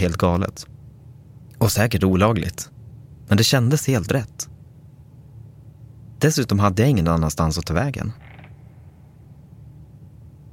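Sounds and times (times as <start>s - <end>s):
speech: 0.0s - 0.7s, 1.6s - 2.7s, 3.3s - 4.5s, 6.2s - 8.2s
door slowly creaking open: 8.1s - 9.0s.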